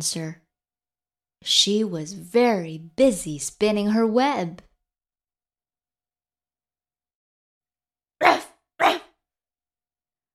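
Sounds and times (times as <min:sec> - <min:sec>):
speech: 0:00.0 - 0:00.4, 0:01.4 - 0:04.7
short sharp dog barks: 0:08.2 - 0:09.2.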